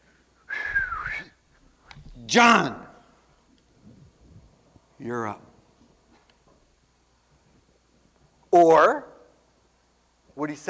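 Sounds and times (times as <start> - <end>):
person whistling one breathy airy note: 0.5 - 1.4
speech: 2.3 - 2.8, 5.0 - 5.4, 8.5 - 9.1, 10.4 - 10.6.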